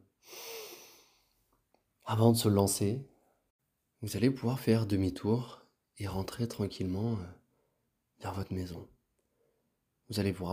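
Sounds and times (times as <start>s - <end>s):
deep breath drawn in close to the microphone: 0.2s - 1.4s
speech: 2.1s - 3.1s, 4.0s - 7.4s, 8.2s - 8.9s, 10.1s - 10.5s.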